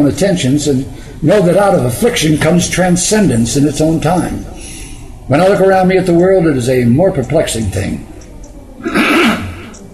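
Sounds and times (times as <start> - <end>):
speech: 0.0 - 4.7, 5.3 - 8.1
throat clearing: 8.8 - 9.7.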